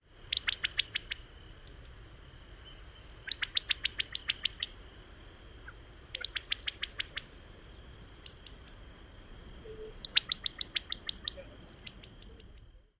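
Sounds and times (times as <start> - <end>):
California Quail pit-pit alarm call: 0.3 - 1.3, 3.0 - 4.7, 5.6 - 7.4, 8.0 - 8.7, 9.6 - 12.6.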